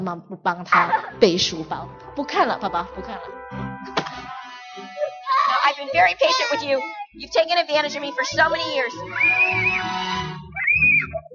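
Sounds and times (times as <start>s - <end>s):
speech: 0.0s - 4.0s, 5.7s - 10.1s
child screaming: 5.0s - 7.2s, 8.5s - 11.2s.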